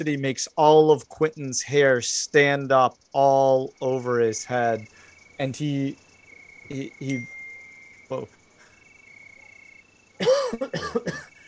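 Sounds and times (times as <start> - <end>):
speech: 0.0 - 6.0, 6.7 - 7.3, 8.1 - 8.4, 10.2 - 11.2
creature coughing hoarsely in a cavern: 10.2 - 11.4.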